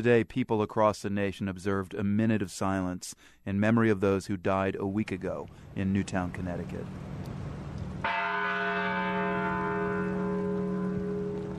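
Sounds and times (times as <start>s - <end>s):
speech: 0.0s - 7.4s
deep church bell strike: 8.0s - 11.5s.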